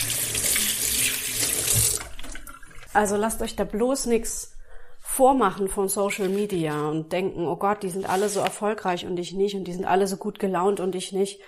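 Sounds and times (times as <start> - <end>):
water running from a tap into a washbasin sink: 0.0 - 3.0
speech: 3.0 - 4.5, 5.2 - 11.4.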